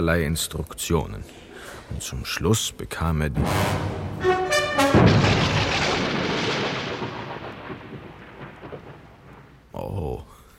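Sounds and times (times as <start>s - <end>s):
speech: 0.0s - 4.4s
thunderclap in a radio drama: 3.4s - 9.9s.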